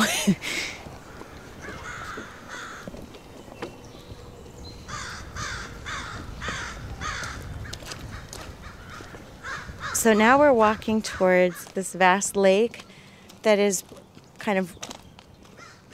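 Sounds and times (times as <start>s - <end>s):
speech: 0.2s - 0.6s, 10.0s - 14.9s
crows cawing: 1.0s - 3.0s, 4.9s - 10.4s, 15.5s - 15.9s.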